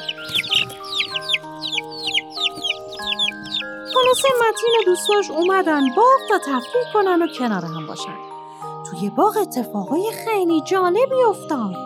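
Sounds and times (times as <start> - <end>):
hen clucking: 0.0 - 6.0
soft sustained musical tones: 0.0 - 11.8
speech: 4.1 - 8.3, 9.0 - 11.8.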